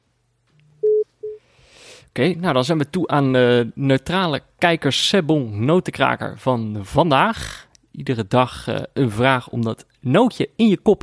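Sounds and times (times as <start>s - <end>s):
telephone busy tone after a call is hung up: 0.8s - 1.4s
speech: 2.2s - 11.0s.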